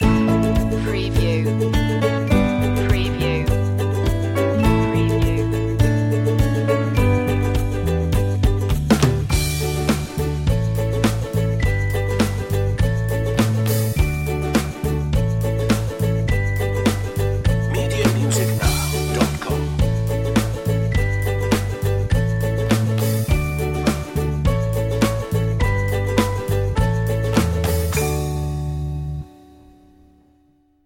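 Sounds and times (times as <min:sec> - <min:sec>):
happy ukulele commercial music: 0:00.0 - 0:28.8.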